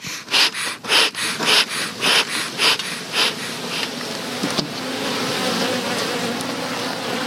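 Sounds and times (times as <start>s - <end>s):
breathy rhythmic puffs: 0.0s - 4.0s
honeybees buzzing in an opened beehive: 0.0s - 7.2s.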